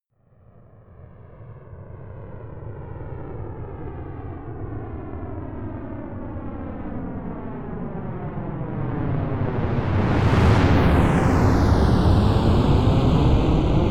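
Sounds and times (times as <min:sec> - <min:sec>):
space shuttle rocket flying by slowly: 0:08.8 - 0:13.8.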